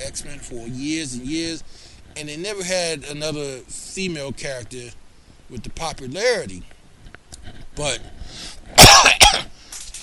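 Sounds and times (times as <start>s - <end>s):
speech: 0.1s - 6.8s, 7.4s - 9.5s
man coughing: 8.8s - 9.5s.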